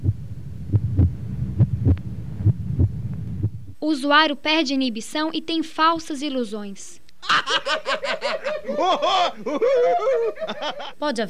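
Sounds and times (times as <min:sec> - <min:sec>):
accelerated heartbeat: 0:00.0 - 0:03.8
low droning hum: 0:00.0 - 0:03.8
speech: 0:03.8 - 0:11.2
laughter: 0:07.2 - 0:11.0.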